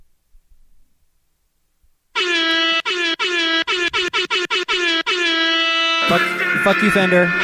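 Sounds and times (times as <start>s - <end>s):
loud blaring air horn blasts: 2.2s - 7.4s
speech: 6.1s - 7.4s.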